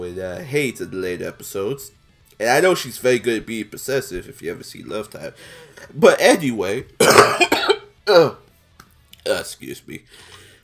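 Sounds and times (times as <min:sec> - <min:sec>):
speech: 0:00.0 - 0:08.4, 0:09.3 - 0:10.4
harsh throaty coughing: 0:07.0 - 0:08.4.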